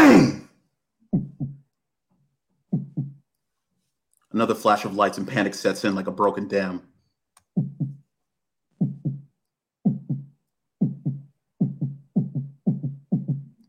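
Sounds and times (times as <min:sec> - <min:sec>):
heartbeat sound effect with deep lub-dub thumps: 0:01.1 - 0:01.7, 0:02.7 - 0:03.2, 0:07.5 - 0:08.0, 0:08.8 - 0:13.6
speech: 0:04.4 - 0:06.9.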